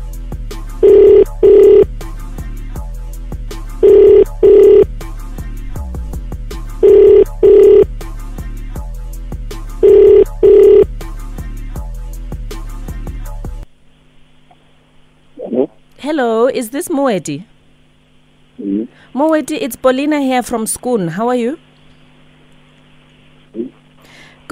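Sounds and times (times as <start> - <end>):
phone ringback tone: 0.8 - 1.9, 3.8 - 4.9, 6.8 - 7.9, 9.8 - 10.9
speech: 16.2 - 17.5, 19.2 - 21.7.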